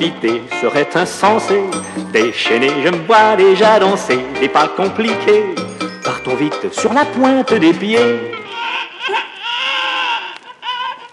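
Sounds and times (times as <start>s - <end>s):
speech: 0.0s - 8.4s
baby crying: 8.0s - 11.1s.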